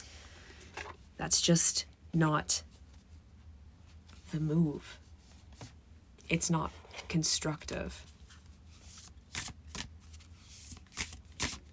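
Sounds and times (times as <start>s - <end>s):
low hiss: 0.0s - 10.8s
speech: 1.2s - 2.7s, 4.3s - 5.0s, 6.3s - 8.1s
oracle cards being shuffled by hand: 8.3s - 11.7s.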